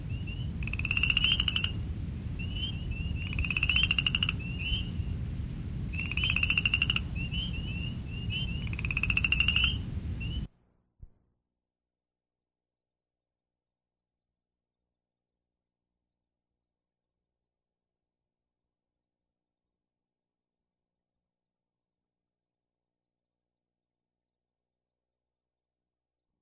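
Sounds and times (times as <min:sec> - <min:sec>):
upland chorus frog calling: 0:00.1 - 0:01.9, 0:02.4 - 0:05.0, 0:05.9 - 0:10.5.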